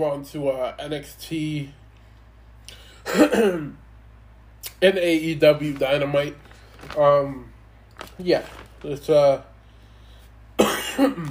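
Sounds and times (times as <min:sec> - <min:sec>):
speech: 0:00.0 - 0:01.8, 0:02.7 - 0:03.8, 0:04.7 - 0:07.5, 0:08.2 - 0:09.5, 0:10.9 - 0:11.3
person coughing: 0:03.0 - 0:03.8, 0:10.6 - 0:11.3.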